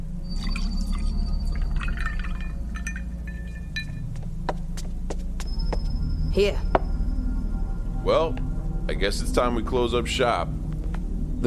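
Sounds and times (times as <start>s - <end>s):
steady low hum: 0.0s - 11.4s
liquid pouring into a glass: 0.2s - 4.0s
drips: 0.3s - 4.3s
sharp clinks: 0.4s - 4.2s
speech: 6.4s - 6.7s, 8.0s - 10.6s.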